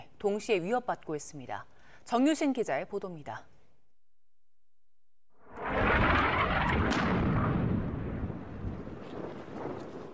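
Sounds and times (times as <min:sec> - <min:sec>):
speech: 0:00.2 - 0:03.5
heavy explosion during armed clashes: 0:05.4 - 0:10.1
long rumbling wash of debris and echo: 0:05.4 - 0:10.1.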